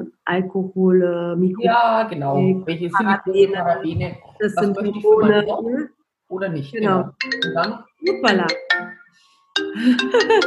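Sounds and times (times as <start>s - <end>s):
speech: 0.3s - 9.0s, 9.8s - 10.4s
mobile phone ringtone for an incoming call: 6.9s - 10.4s.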